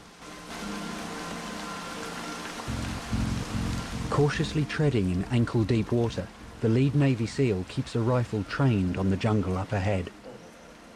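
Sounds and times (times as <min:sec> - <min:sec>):
heavy rain falling in a waterlogged jungle: 0:00.0 - 0:09.8
low rumbling: 0:02.7 - 0:07.5
speech: 0:04.2 - 0:10.2.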